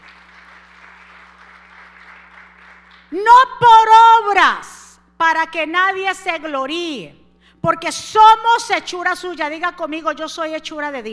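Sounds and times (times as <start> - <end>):
crowd clapping in a large room: 0.0 - 3.2
low electrical hum: 0.0 - 11.1
speech: 3.1 - 4.7, 5.3 - 11.1.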